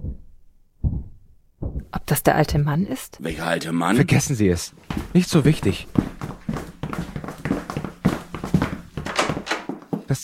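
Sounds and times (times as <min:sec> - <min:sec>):
speech: 0:02.0 - 0:06.0
footstep thuds on the floor overhead: 0:04.8 - 0:10.1.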